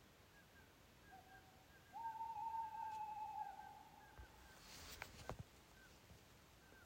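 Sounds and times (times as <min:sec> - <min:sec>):
owl call in Finnskogen Norway: 0:01.0 - 0:04.8.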